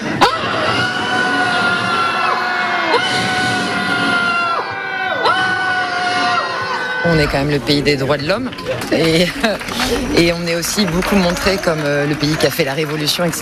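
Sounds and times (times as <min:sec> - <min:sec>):
large crowd shouting in anger at a rally: 0:00.0 - 0:07.7
speech: 0:07.1 - 0:13.4.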